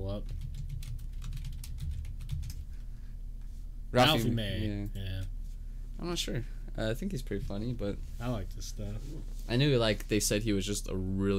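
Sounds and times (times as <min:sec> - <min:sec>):
steady low hum: 0:00.0 - 0:11.3
typing on a computer keyboard: 0:00.3 - 0:02.6
speech: 0:03.9 - 0:05.1, 0:06.0 - 0:11.3.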